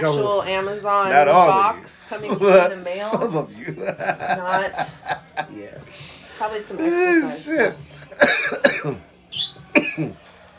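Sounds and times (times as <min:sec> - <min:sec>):
speech: 0:00.0 - 0:10.2
laughter: 0:02.0 - 0:05.7
person coughing harshly after smoking weed: 0:08.2 - 0:09.0, 0:09.8 - 0:10.2.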